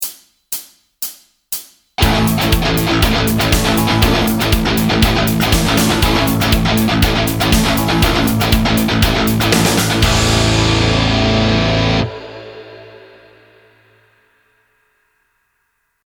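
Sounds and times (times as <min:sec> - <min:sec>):
Phrygian dominant backing track: 0:02.0 - 0:13.6.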